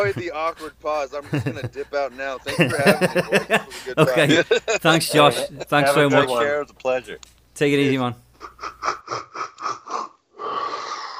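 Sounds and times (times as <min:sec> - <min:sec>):
voice imitating a train pulling in with rhythmic chugging huffs of breath: 0:00.0 - 0:05.6, 0:08.3 - 0:11.1
laughter: 0:00.0 - 0:06.4, 0:08.4 - 0:09.9
speech: 0:00.0 - 0:09.2
loud drawn-out yawn: 0:09.3 - 0:11.1.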